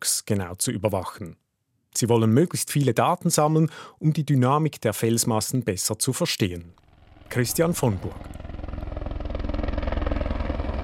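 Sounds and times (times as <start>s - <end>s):
speech: 0.0s - 1.4s, 2.0s - 8.6s
helicopter lifting a wooden crate and plastic sack at Ortstockhaus above Braunwald: 6.8s - 10.8s.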